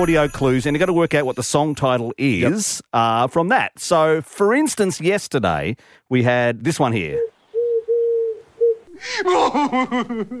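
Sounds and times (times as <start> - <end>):
speech: 0.0 - 7.3, 9.0 - 10.3
low steady dove coos: 7.6 - 9.6.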